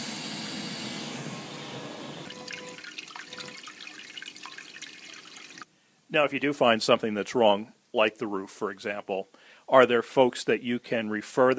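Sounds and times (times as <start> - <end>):
water rushing: 2.3 - 5.6
speech: 6.1 - 11.5.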